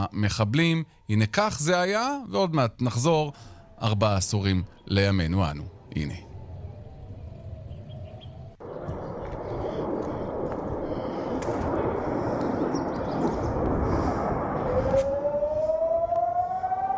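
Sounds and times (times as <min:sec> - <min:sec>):
speech: 0:00.0 - 0:06.3
civil defense siren wailing: 0:05.7 - 0:16.9.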